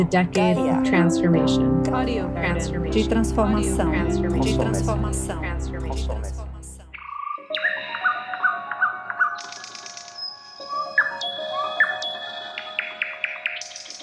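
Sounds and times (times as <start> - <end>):
speech: 0.0 - 6.6
nightingale singing: 6.9 - 14.0.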